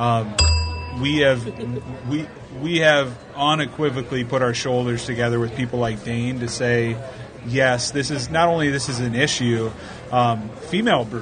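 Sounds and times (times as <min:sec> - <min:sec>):
speech: 0:00.0 - 0:11.1
bell ding: 0:00.3 - 0:02.4.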